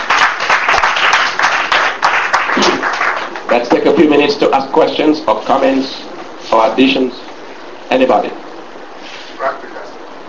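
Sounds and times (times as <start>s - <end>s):
congregation clapping during a church service: 0.0s - 4.0s
speech: 3.6s - 6.0s, 6.7s - 7.3s, 7.9s - 8.4s.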